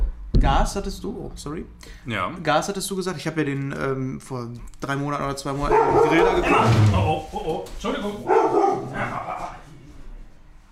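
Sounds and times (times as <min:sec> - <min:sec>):
speech: 0:00.4 - 0:08.4
dog barking: 0:05.7 - 0:06.7, 0:08.2 - 0:09.5.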